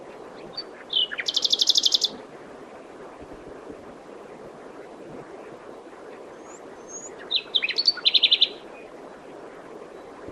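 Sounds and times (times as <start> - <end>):
common nightingale song: 0.0 - 2.2, 5.6 - 10.2.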